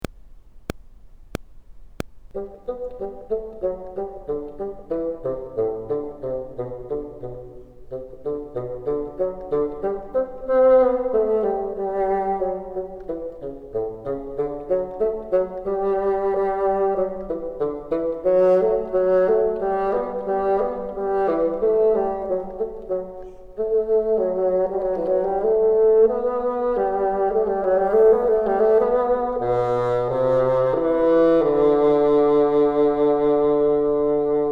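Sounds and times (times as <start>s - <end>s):
bassoon low register: 2.3s - 34.4s.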